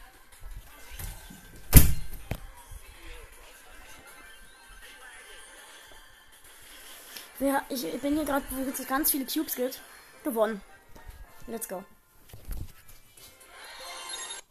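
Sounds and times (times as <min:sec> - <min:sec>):
door swinging shut with a loud thud: 0:01.6 - 0:02.4
speech: 0:07.4 - 0:10.7, 0:11.5 - 0:11.9.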